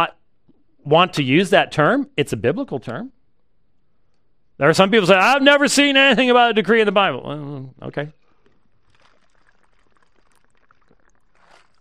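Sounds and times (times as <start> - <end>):
speech: 0.8 - 3.2, 4.6 - 8.2
person sipping and gulping a drink from a glass: 8.1 - 11.8.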